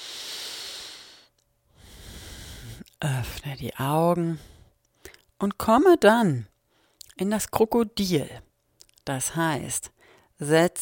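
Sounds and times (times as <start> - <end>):
deep slow breaths during a guided relaxation exercise: 0.0 - 2.9, 4.3 - 5.2, 10.0 - 10.4
speech: 3.0 - 4.6, 5.4 - 6.5, 7.2 - 10.8.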